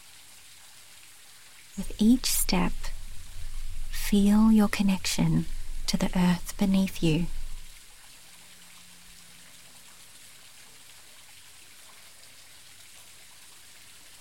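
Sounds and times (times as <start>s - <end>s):
speech: 1.8s - 2.9s, 4.1s - 7.4s
falling water rushing: 1.8s - 7.8s.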